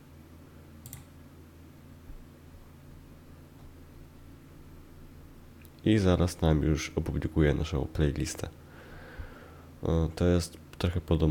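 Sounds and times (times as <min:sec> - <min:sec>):
steady low electrical hum and hiss: 0:00.0 - 0:11.2
computer mouse click: 0:00.8 - 0:01.1
speech: 0:05.8 - 0:08.6, 0:09.8 - 0:11.2.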